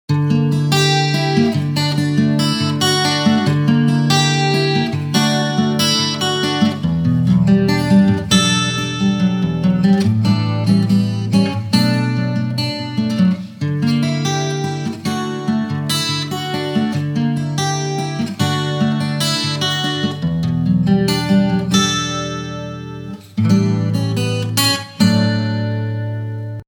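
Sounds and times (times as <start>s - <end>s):
acoustic guitar with chorus: 0.1s - 26.6s.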